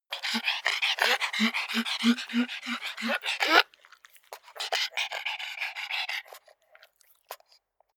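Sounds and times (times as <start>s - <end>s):
pug panting: 0.0s - 6.6s
pug smacking: 0.1s - 7.6s.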